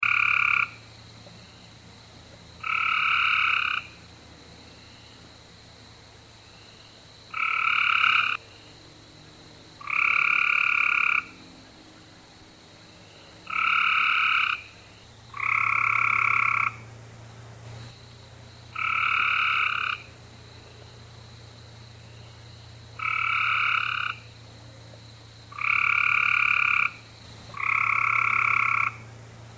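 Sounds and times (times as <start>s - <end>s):
Carolina gray treefrogs calling: 0.0s - 29.5s.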